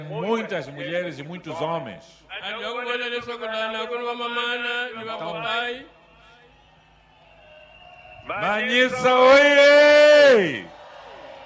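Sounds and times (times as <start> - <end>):
speech: 0.0 - 6.0, 8.3 - 10.7
large outdoor crowd of men and women shouting in response: 8.4 - 11.4.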